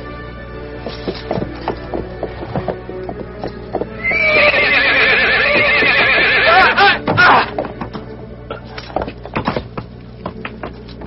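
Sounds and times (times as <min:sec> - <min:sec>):
horse hooves clopping: 0:00.6 - 0:11.0
horse neighing: 0:04.0 - 0:07.4.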